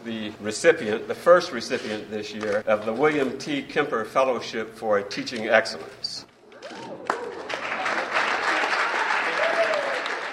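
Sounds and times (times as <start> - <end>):
speech: 0.0 - 6.3
students applauding in a lecture hall: 6.6 - 10.3.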